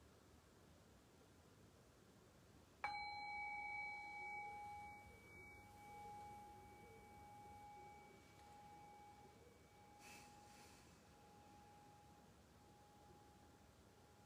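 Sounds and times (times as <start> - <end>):
meditation bell ringing: 2.8 - 14.2.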